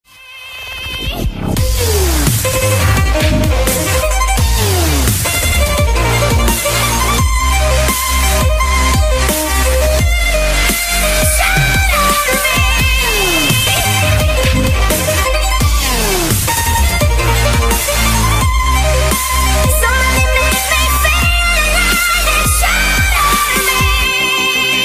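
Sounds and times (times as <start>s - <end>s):
violin dubstep music: 0.5s - 24.8s.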